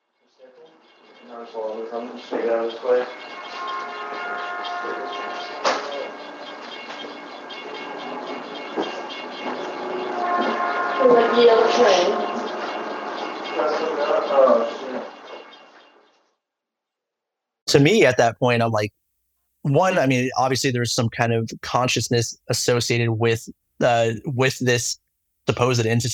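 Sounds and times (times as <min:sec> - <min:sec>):
train horn blasting: 0:00.5 - 0:15.2
speech: 0:01.4 - 0:03.3, 0:11.0 - 0:12.2, 0:14.1 - 0:15.0, 0:17.7 - 0:19.0, 0:19.6 - 0:26.1.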